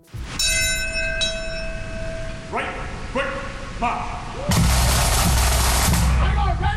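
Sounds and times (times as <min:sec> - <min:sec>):
large ceremonial bell tolling at a memorial ceremony in New York City: 0:00.4 - 0:04.8
low outdoor rumble of ambient noise: 0:00.6 - 0:06.7
speech: 0:03.8 - 0:04.2.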